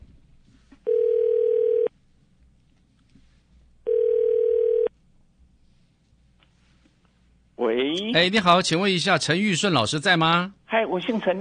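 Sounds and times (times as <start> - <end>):
faint hiss: 0.0 - 11.4
telephone ringback tone through a phone line: 0.9 - 1.9, 3.9 - 4.9
speech: 8.0 - 11.4.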